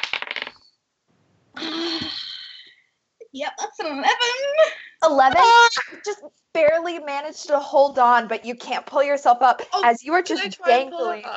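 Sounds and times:
dice clattering and rolling on a hard tabletop: 0:00.0 - 0:00.6
speech: 0:03.4 - 0:11.3.

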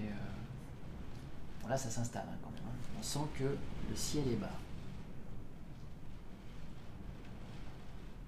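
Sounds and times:
rain beating against window panes: 0:00.0 - 0:08.2
speech: 0:01.6 - 0:04.7.

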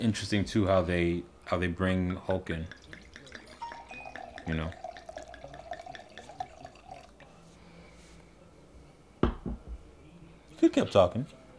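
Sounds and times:
speech: 0:00.0 - 0:02.8, 0:04.5 - 0:04.8, 0:10.6 - 0:11.4
wine pouring into a glass: 0:01.4 - 0:07.7
glass clink: 0:02.0 - 0:07.3, 0:09.2 - 0:09.9.

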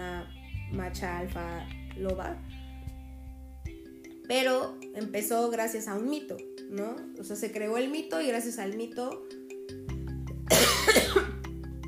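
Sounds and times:
speech: 0:00.7 - 0:02.6, 0:04.3 - 0:09.9
person coughing: 0:10.5 - 0:11.4.

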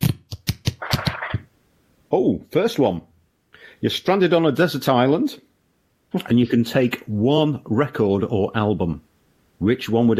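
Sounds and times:
deck of cards being shuffled before a card game: 0:00.0 - 0:01.4
speech: 0:02.1 - 0:03.1, 0:03.8 - 0:05.5, 0:06.1 - 0:10.1.

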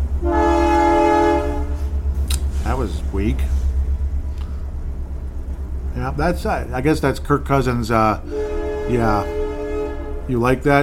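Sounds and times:
Canadian Pacific train horn blast: 0:00.0 - 0:02.1, 0:08.1 - 0:10.8
low rumble of the passing train: 0:00.0 - 0:10.8
speech: 0:02.8 - 0:03.6, 0:06.0 - 0:09.4, 0:10.3 - 0:10.8.

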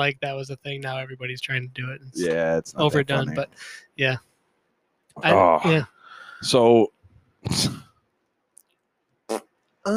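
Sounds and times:
speech: 0:00.0 - 0:04.3, 0:05.2 - 0:07.8
fart: 0:09.3 - 0:09.5.

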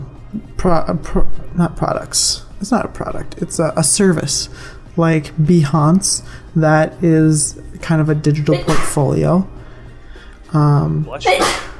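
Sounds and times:
speech: 0:00.3 - 0:09.6, 0:10.5 - 0:11.7
single human sneeze: 0:11.2 - 0:11.7.

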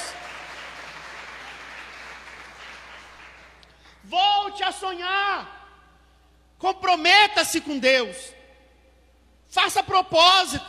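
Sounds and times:
crowd applauding: 0:00.0 - 0:04.0
speech: 0:04.0 - 0:05.6, 0:06.6 - 0:08.4, 0:09.5 - 0:10.6.

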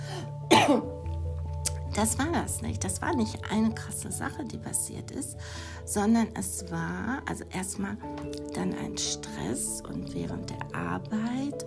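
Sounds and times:
harsh cough: 0:00.5 - 0:01.0
speech: 0:00.7 - 0:00.9, 0:02.0 - 0:11.6.

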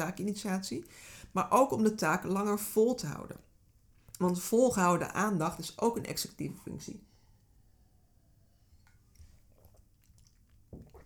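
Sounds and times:
speech: 0:00.0 - 0:03.5, 0:04.2 - 0:07.1
person sipping water: 0:08.8 - 0:11.0
person gulping: 0:09.1 - 0:11.0.

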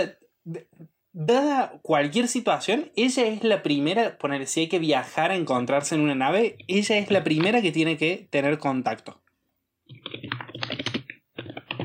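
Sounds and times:
speech: 0:00.0 - 0:09.2
typing on a computer keyboard: 0:09.9 - 0:11.8.

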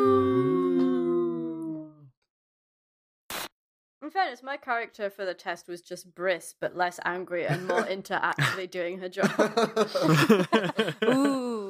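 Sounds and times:
human voice imitating a wolf howl: 0:00.0 - 0:02.1
speech: 0:04.1 - 0:11.5
laughter: 0:07.5 - 0:08.6, 0:09.2 - 0:11.6.

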